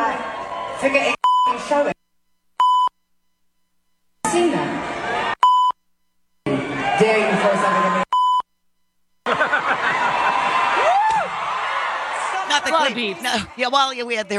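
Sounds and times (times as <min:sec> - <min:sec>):
noisy concert crowd cheering: 0:00.0 - 0:01.2, 0:04.6 - 0:05.4, 0:06.5 - 0:08.1, 0:09.3 - 0:14.3
speech: 0:00.8 - 0:02.0, 0:12.9 - 0:14.3
censor bleeps: 0:01.2 - 0:01.6, 0:02.3 - 0:04.4, 0:05.4 - 0:06.4, 0:08.1 - 0:09.0
scattered laughter: 0:09.2 - 0:10.6
singer talking on stage during a concert: 0:12.4 - 0:14.3.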